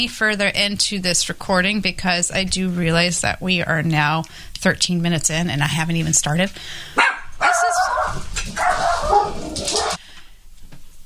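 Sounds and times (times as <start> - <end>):
speech: 0.0 - 7.1
dogs barking and whimpering: 7.0 - 10.0.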